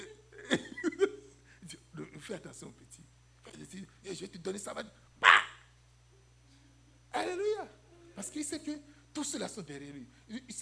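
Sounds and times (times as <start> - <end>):
laughter: 0.0 - 1.4
speech: 2.3 - 3.0, 3.6 - 5.0, 8.2 - 10.6
dog barking: 5.2 - 5.6.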